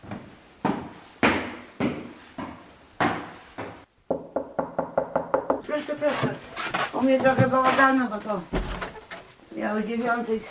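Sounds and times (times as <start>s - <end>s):
loud heavy knocking on a door: 4.1s - 5.6s
speech: 5.7s - 8.6s, 9.6s - 10.4s.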